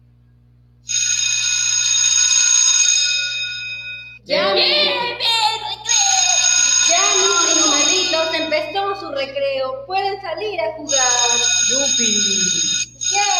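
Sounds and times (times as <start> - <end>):
loud electric school bell ringing for recess: 0.9 - 4.5, 5.9 - 9.4, 10.9 - 13.3
excited voices: 4.2 - 13.3
speech: 9.2 - 13.3.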